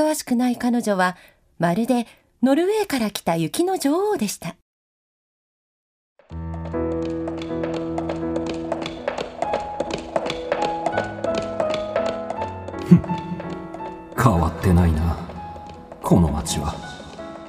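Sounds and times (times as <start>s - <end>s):
speech: 0.0s - 4.6s, 14.2s - 15.1s, 16.1s - 16.8s
sustained music: 6.3s - 17.4s
horse-drawn carriage hooves clip-clopping: 6.5s - 17.4s.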